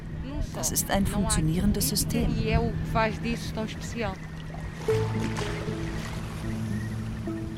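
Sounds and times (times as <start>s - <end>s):
faint water sounds: 0.0s - 7.5s
small motorboat engine droning in the Ria Formosa marshes on the Algarve coast: 0.0s - 7.5s
speech: 0.4s - 6.2s.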